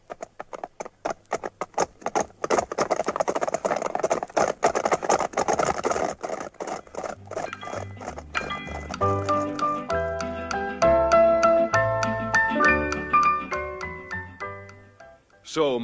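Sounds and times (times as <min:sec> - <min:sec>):
horses' hooves clip-clopping at a trot: 0:00.0 - 0:14.2
lively melodic music: 0:07.2 - 0:15.8
speech: 0:15.6 - 0:15.8.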